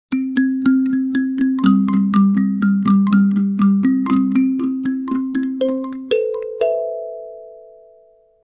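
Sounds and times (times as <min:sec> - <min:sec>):
balafon celebration jingle in Africa: 0:00.1 - 0:08.3.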